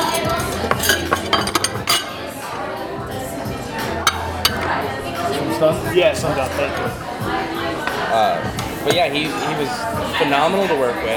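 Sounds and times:
silverware and dishes clinking and clattering at table: 0.0 - 2.5, 4.0 - 4.8
murmur of chatter: 0.0 - 11.1
speech: 5.6 - 11.1.

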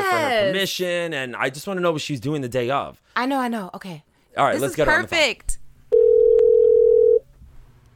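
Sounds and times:
speech: 0.5 - 5.6
telephone dial tone while placing a call: 6.0 - 7.2.

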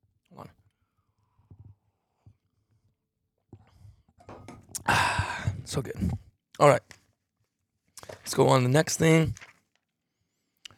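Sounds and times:
coffee mug being handled: 4.2 - 4.8
person gulping coffee: 4.7 - 5.6
speech: 5.7 - 7.0, 8.3 - 9.5.

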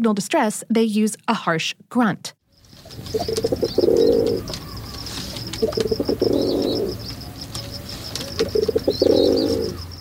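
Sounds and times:
speech: 0.0 - 4.7, 5.6 - 7.1
faint high chirping from other birds: 2.4 - 9.9
rock pigeon gentle cooing: 2.9 - 9.9.

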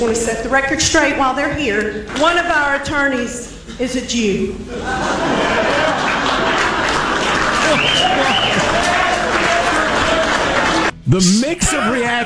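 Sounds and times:
speech: 0.0 - 5.6, 11.1 - 12.2
scattered laughter: 4.7 - 8.8, 11.6 - 12.2
large rally crowd cheering and applause: 4.8 - 10.9
high whoops from crowd: 7.6 - 10.9.

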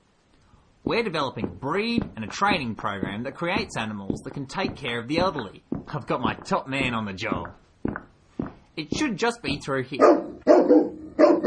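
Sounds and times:
speech: 0.8 - 8.0, 8.8 - 11.4
large Doberman Rottweiler Pitbull cross therapy dog barking deeply: 10.0 - 11.4.

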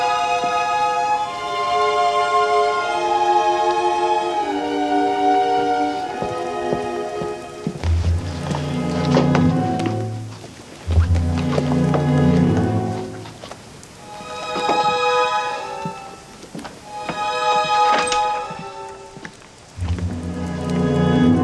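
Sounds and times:
rain pattering outside a hotel: 0.0 - 21.4
sustained musical tones: 0.0 - 21.4
low rumbling drone: 7.8 - 13.3, 19.7 - 21.4.

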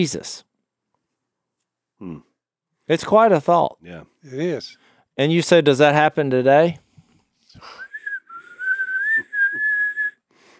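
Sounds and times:
speech: 0.0 - 0.5, 2.0 - 2.3, 2.9 - 6.8
person whistling one long steady note: 7.6 - 10.3.

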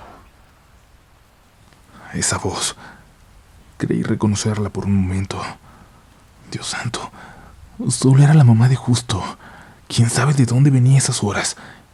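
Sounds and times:
rain falling: 0.0 - 11.9
speech: 2.1 - 3.0, 3.8 - 5.6, 6.5 - 11.9.

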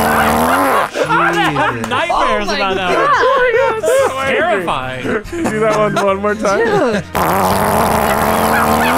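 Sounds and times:
loud angry-sounding raspy buzzing fart: 0.0 - 0.9, 7.1 - 8.9
laughter: 0.0 - 8.9
speech: 1.5 - 8.9.

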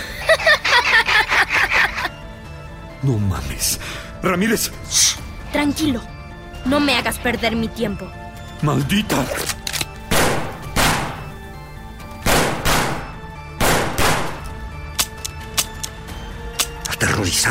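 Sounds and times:
laughter: 0.0 - 2.2
speech: 3.0 - 9.6, 17.2 - 17.4
loud gunshots at range: 10.1 - 11.3, 12.2 - 14.5.

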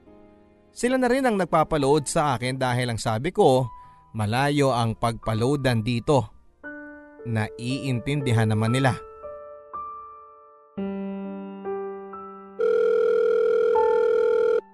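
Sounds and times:
speech: 0.8 - 6.4, 7.2 - 9.1
electronic telephone beeps as a call goes through: 12.6 - 14.6.

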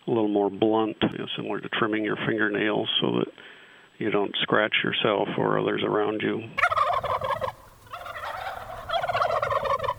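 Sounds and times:
speech: 0.1 - 6.7
free-range heirloom turkeys gobbling: 6.6 - 9.9.

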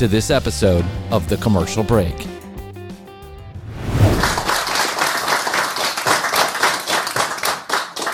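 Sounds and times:
speech: 0.0 - 2.4
group of people clapping: 4.2 - 8.1.

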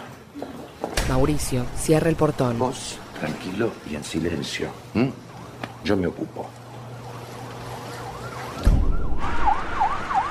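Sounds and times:
speech: 1.1 - 5.2, 5.8 - 6.6
police car siren wailing in rising-and-falling sweeps: 7.6 - 10.2.

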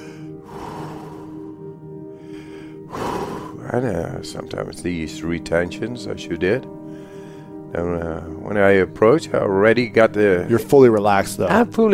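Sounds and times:
heavy forceful breathing in and out: 0.0 - 3.6, 6.8 - 7.7
speech: 3.7 - 6.8, 7.7 - 11.9.

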